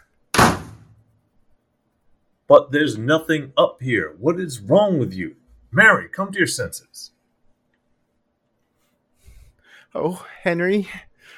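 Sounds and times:
door slamming shut: 0.4s - 1.0s
speech: 2.5s - 7.2s, 9.9s - 11.3s.

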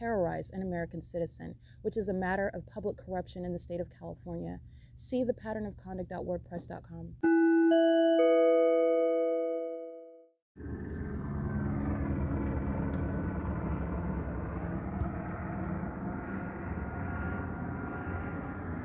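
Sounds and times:
speech: 0.0s - 7.9s
chime ringing: 7.2s - 9.9s
helicopter roar flying over a vehicle in California: 10.6s - 18.8s.

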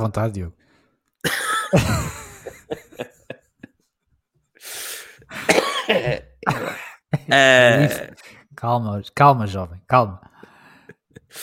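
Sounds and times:
speech: 0.0s - 0.6s, 1.2s - 2.8s, 7.3s - 10.3s
coughing: 1.2s - 3.4s, 5.2s - 8.3s
laughter: 1.3s - 3.8s, 6.4s - 8.2s
throat clearing: 5.4s - 8.2s.

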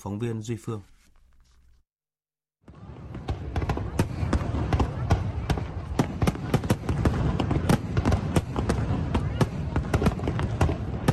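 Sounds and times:
speech: 0.0s - 0.9s
high-altitude fireworks bangs and crackles: 2.6s - 11.1s
roaring murmur of thousands of people at a fireworks show: 2.7s - 11.1s.

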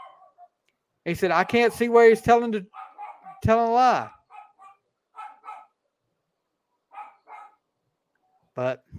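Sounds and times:
dogs barking: 0.0s - 0.6s, 1.3s - 2.0s, 2.6s - 5.8s, 6.9s - 7.7s
speech: 1.0s - 2.8s, 3.4s - 4.2s, 8.6s - 8.9s.

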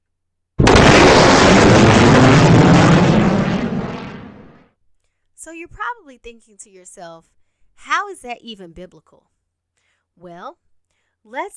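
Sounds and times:
sonic boom of a jet breaking the sound barrier: 0.6s - 4.6s
speech: 5.6s - 9.4s, 10.2s - 10.6s, 11.2s - 11.5s.

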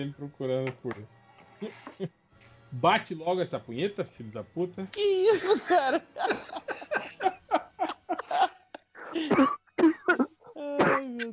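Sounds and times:
speech: 0.0s - 7.1s, 9.2s - 9.6s
laughter: 5.3s - 9.6s
person coughing: 6.2s - 7.4s, 9.1s - 11.3s.

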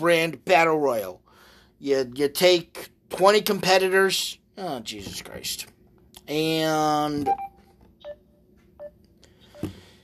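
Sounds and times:
speech: 0.0s - 1.2s, 1.8s - 7.5s
short quiet electronic beeps: 7.2s - 8.2s.

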